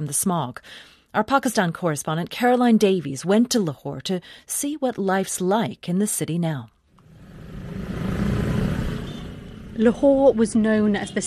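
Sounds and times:
speech: 0.0 - 6.7, 9.8 - 11.2
cars droning and revving in dense street traffic: 7.0 - 10.1
motorcycles droning and revving in dense street traffic: 7.0 - 11.2.

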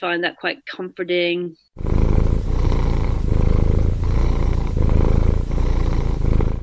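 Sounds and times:
speech: 0.0 - 2.0
cat purring loudly: 1.8 - 6.6.

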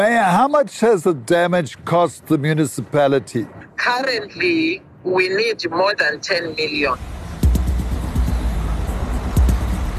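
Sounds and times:
speech: 0.0 - 7.1
heavy trucks rumbling past on a road: 6.9 - 9.9.

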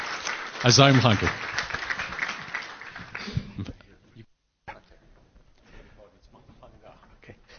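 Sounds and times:
crowd applause for a speaker: 0.0 - 3.7
speech: 0.6 - 1.5.

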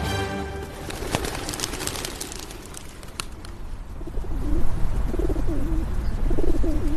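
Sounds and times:
outdoor noise: 0.0 - 6.9
pigeon cooing in low warbling phrases: 4.0 - 6.9.

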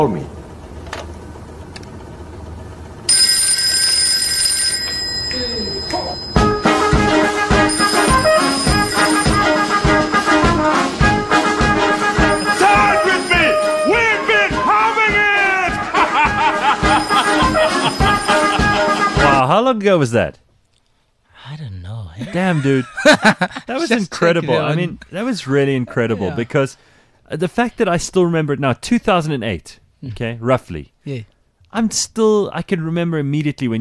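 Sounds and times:
phone ringtone playing a full song: 3.1 - 14.8, 16.3 - 19.4
laughter: 15.5 - 19.4, 22.2 - 24.8, 25.7 - 26.7
speech: 19.7 - 20.5, 22.2 - 33.7.

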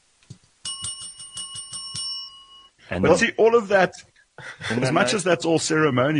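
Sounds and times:
tiny high-pitched bell ringing: 0.6 - 2.8
speech: 2.9 - 6.1.

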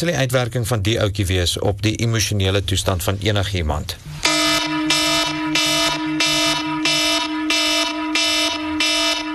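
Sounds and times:
speech: 0.0 - 4.8
alarm clock with harsh electronic beeping: 4.3 - 9.3.

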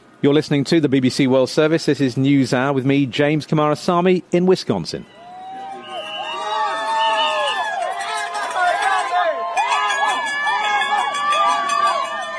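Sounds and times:
speech: 0.2 - 5.2
jubilant supporters cheering and shouting beside a highway: 5.1 - 12.3.

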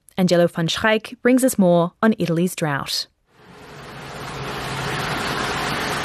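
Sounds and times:
speech: 0.2 - 3.1
water gushing into the large tank of a water truck at a fire department in Cuneo Italy: 3.4 - 6.0.

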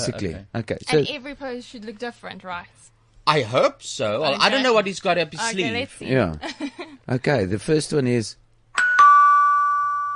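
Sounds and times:
speech: 0.0 - 8.4
doorbell ding-dong chime: 8.8 - 10.1.

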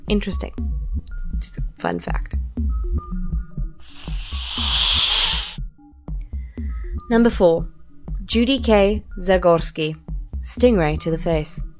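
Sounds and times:
speech: 0.1 - 0.7, 1.8 - 2.4, 7.1 - 11.7
steady pulsing low beat: 0.4 - 4.4, 5.6 - 11.7
snake hissing: 3.8 - 5.7.

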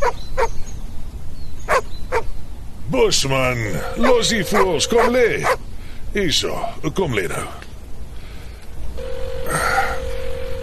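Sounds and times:
constant hiss: 0.0 - 10.6
speech: 2.9 - 7.6
unanswered telephone ringing: 3.9 - 5.3, 9.0 - 10.6.

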